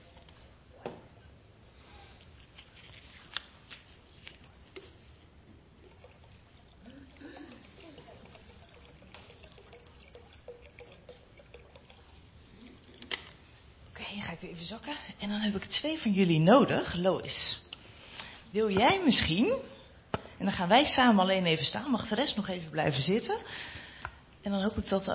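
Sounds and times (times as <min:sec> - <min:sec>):
small splashes and clinks: 0:05.7 - 0:13.4
water pouring steadily into a bowl: 0:05.7 - 0:13.6
speech: 0:14.2 - 0:17.6, 0:18.5 - 0:19.7, 0:20.4 - 0:23.7, 0:24.4 - 0:25.1.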